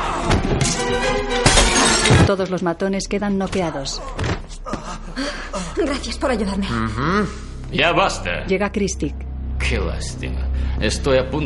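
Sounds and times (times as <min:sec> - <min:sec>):
vase shattering as it is smashed over someone's head during a brawl: 0:00.5 - 0:02.3
speech: 0:02.3 - 0:11.4.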